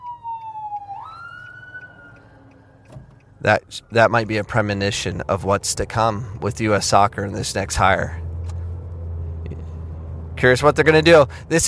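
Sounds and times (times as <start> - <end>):
fire truck siren wailing as it passes: 0.0 - 3.9
low traffic rumble: 0.0 - 11.6
speech: 3.4 - 8.2, 10.4 - 11.6.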